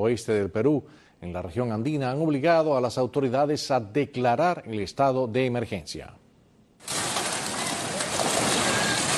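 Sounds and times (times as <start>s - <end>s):
speech: 0.0s - 6.2s
floodwater of the Perene River tearing down a riverside house in Peru: 6.9s - 9.1s.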